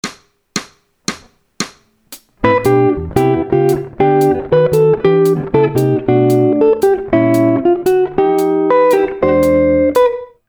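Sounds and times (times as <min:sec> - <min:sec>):
advanced gospel chords on guitar: 0:02.4 - 0:10.3.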